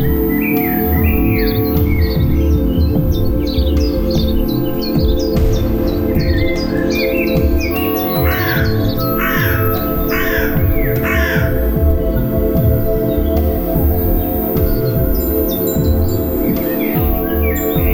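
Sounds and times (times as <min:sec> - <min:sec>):
birds chirping and singing in Germany: 0:00.0 - 0:17.9.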